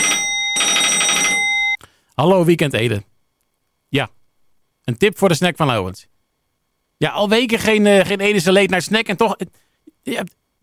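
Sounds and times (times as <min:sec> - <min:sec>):
telephone ringing with trilling electronic bell: 0:00.0 - 0:01.8
speech: 0:02.2 - 0:03.1, 0:03.9 - 0:04.2, 0:04.9 - 0:06.1, 0:07.0 - 0:10.4.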